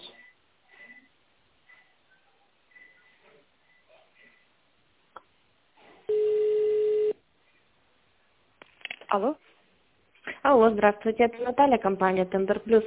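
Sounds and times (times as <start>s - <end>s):
telephone line tone while waiting for operator: 6.1s - 7.2s
speech: 9.1s - 9.5s, 10.4s - 12.8s.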